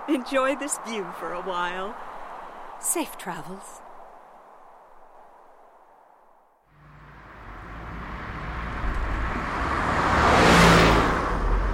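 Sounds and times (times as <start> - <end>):
speech: 0.1 - 2.1, 2.8 - 3.8
car driving along the road with tire and wind noise: 6.7 - 11.7.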